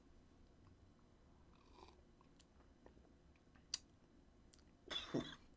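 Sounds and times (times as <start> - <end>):
person coughing after sipping a strong beer: 4.9 - 5.5.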